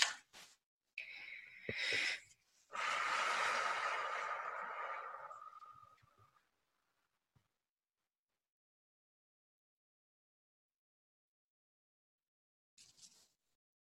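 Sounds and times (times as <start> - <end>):
slow deep breathing during a guided relaxation exercise: 1.0 - 6.0.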